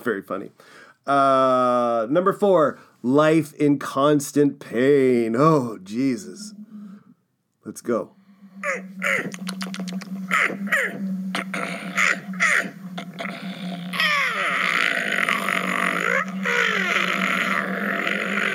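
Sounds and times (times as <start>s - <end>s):
speech: 0.0s - 6.7s, 7.6s - 12.1s
sharp gasps: 0.6s - 1.0s
raspy croaking grunts: 8.6s - 18.5s
zombie-style groans: 10.4s - 18.5s.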